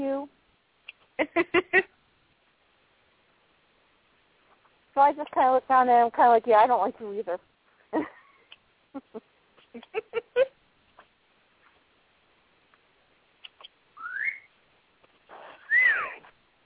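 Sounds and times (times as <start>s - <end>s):
speech: 1.2s - 1.8s, 5.0s - 8.1s
birds chirping with clicks, tweets and rising whistle-like calls: 13.4s - 14.5s.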